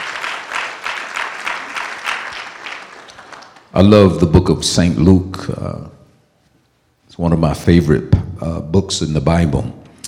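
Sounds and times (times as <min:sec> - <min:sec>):
congregation clapping hands: 0:00.0 - 0:04.2
speech: 0:03.8 - 0:06.0, 0:07.2 - 0:09.8.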